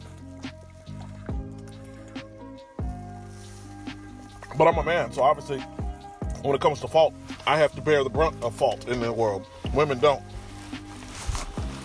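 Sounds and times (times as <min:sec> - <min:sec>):
person drinking water with wet gulps and swallows: 0:00.0 - 0:02.6
speech: 0:04.6 - 0:05.8, 0:06.4 - 0:10.3.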